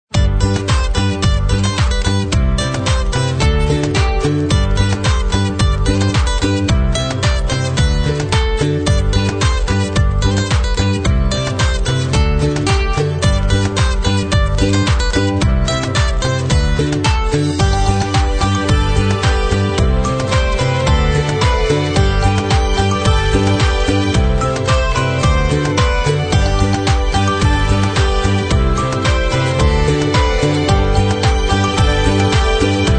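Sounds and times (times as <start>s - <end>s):
fun adventure comedy music for kids: 0.2s - 32.9s.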